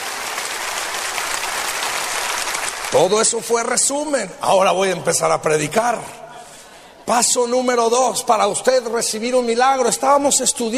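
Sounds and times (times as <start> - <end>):
congregation applause of thanks during a church sermon: 0.0 - 3.9
speech: 2.9 - 6.3, 7.1 - 10.7.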